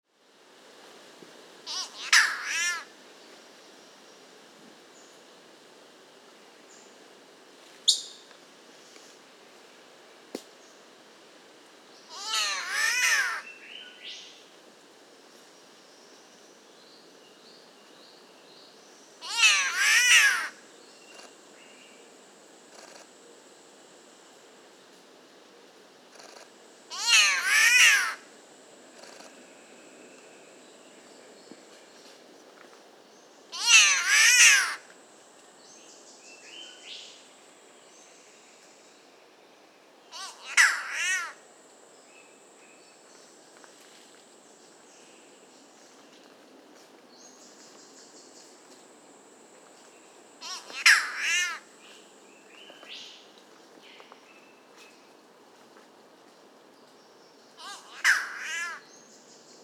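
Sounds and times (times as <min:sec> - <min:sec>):
Ailuroedus maculosus spotted catbird calling: 0:01.7 - 0:02.9, 0:12.1 - 0:13.5, 0:19.2 - 0:20.6, 0:26.2 - 0:28.3, 0:33.5 - 0:34.8, 0:40.1 - 0:41.4, 0:50.4 - 0:51.6, 0:57.6 - 0:58.8.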